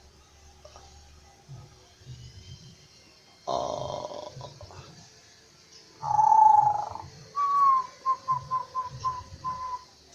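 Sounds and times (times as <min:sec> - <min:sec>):
zebra dove cooing song: 0:03.5 - 0:04.9, 0:06.0 - 0:09.8.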